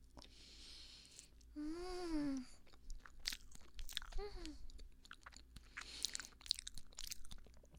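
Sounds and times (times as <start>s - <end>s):
person humming in enjoyment: 1.6s - 2.6s
biting and chewing durian mille-crepe cake: 2.7s - 7.7s.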